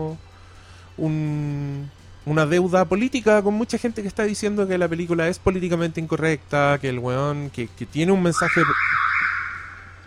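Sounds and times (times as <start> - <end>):
speech: 0.0 - 0.3, 1.0 - 9.0
loud shrill alarm blaring with a steady piercing tone: 8.4 - 10.0.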